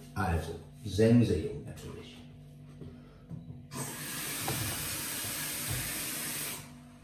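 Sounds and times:
speech: 0.2 - 1.7
steam hissing from coffee machine making a coffee: 3.8 - 6.7.

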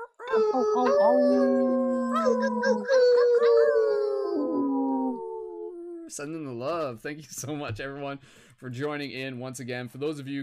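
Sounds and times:
several people imitating wolf howls together: 0.0 - 6.1
speech: 0.4 - 1.7, 6.2 - 10.4.

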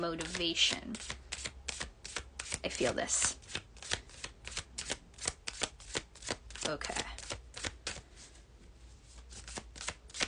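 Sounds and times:
speech: 0.0 - 1.2, 2.6 - 3.4, 6.7 - 7.1
tarot cards being shuffled: 0.0 - 8.3, 9.0 - 10.2.

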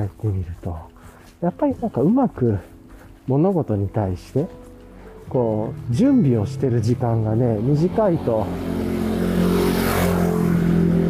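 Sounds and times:
speech: 0.0 - 2.7, 3.3 - 4.6, 5.3 - 9.6
motorcycle passing by: 5.3 - 11.0.

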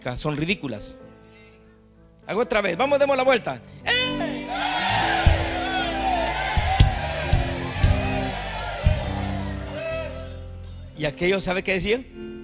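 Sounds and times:
speech: 0.0 - 1.1, 2.3 - 4.3, 11.0 - 12.4
large crowd shouting and whooping together: 4.2 - 10.4.

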